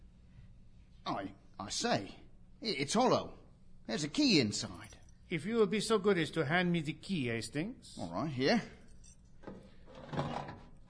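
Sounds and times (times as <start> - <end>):
speech: 1.1 - 8.8
wooden drawer scraping and rattling open: 9.9 - 10.8.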